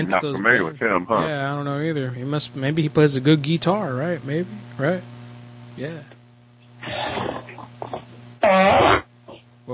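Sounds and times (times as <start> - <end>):
speech: 0.0 - 5.1, 5.8 - 6.1, 6.8 - 8.0
steady electrical hum: 0.0 - 9.7
fart: 6.8 - 9.4.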